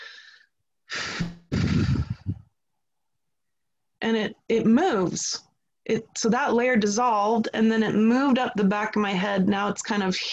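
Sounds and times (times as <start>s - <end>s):
person taking a deep breath: 0.0s - 2.4s
speech: 4.1s - 10.3s.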